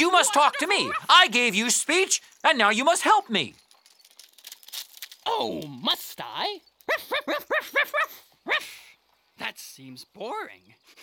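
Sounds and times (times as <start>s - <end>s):
laughter: 0.0s - 1.4s, 6.9s - 8.6s
speech: 0.0s - 3.6s, 5.3s - 8.8s, 9.4s - 11.0s
dog barking: 6.9s - 8.6s.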